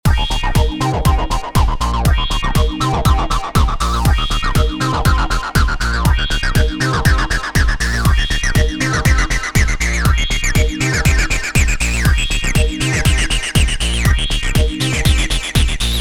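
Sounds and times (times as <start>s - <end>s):
drums: 0.0s - 15.9s
acid music: 0.1s - 15.9s.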